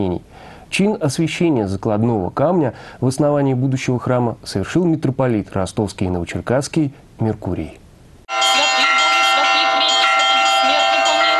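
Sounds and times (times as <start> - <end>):
speech: 0.0 - 7.8
church bells in Kuleshovka Azov district Rostov region Russia ringing for the Divine Liturgy: 8.3 - 11.3.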